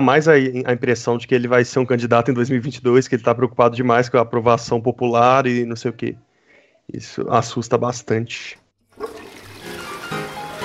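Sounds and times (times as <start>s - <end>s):
speech: 0.0s - 6.2s, 6.9s - 9.2s
toilet flushing: 8.9s - 10.6s.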